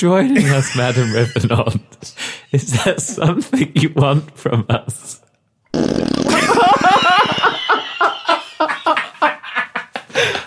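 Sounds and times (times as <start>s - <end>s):
speech: 0.0s - 6.7s
laughter: 0.3s - 3.9s, 6.3s - 10.4s
long loud fart sound effect: 5.7s - 7.5s.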